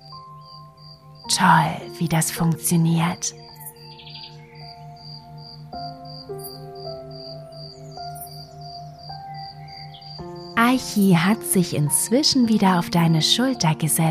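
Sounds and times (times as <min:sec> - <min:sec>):
green grasshopper chirping with vibrating wings: 0:00.0 - 0:14.0
speech: 0:01.3 - 0:03.4, 0:10.8 - 0:14.0.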